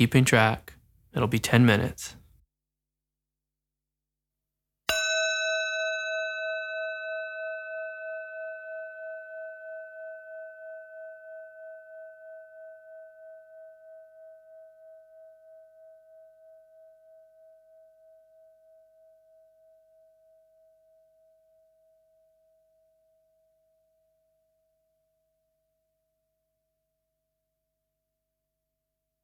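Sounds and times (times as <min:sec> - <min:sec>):
speech: 0:00.0 - 0:02.2
meditation bell struck and ringing: 0:04.9 - 0:17.7.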